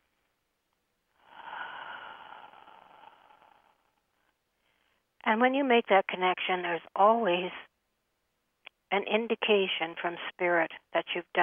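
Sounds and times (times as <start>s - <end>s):
slow deep breath: 1.1s - 5.1s
speech: 5.3s - 7.7s, 8.9s - 11.4s.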